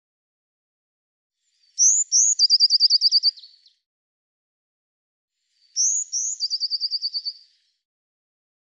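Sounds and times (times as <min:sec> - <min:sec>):
Eurasian blue tit song: 0:01.4 - 0:03.8, 0:05.4 - 0:07.8.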